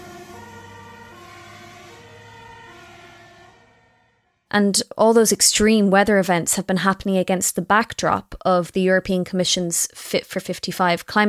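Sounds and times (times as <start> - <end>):
town alarm sirens blaring during flooding after a dike burst: 0.0 - 4.3
speech: 4.5 - 11.2.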